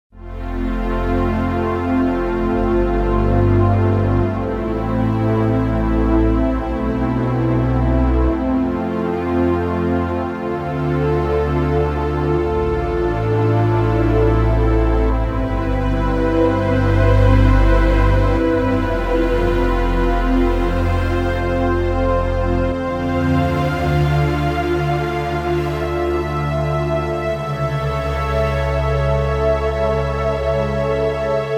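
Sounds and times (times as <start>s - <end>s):
Roland JV-880 JP-8 synth pad: 0.2s - 31.5s.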